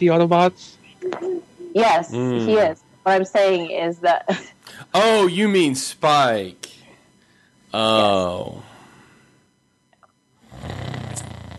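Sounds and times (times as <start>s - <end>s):
speech: 0.0s - 1.2s, 1.8s - 6.8s, 7.7s - 8.7s
person snoring loudly and roughly: 2.1s - 2.7s, 10.4s - 11.5s.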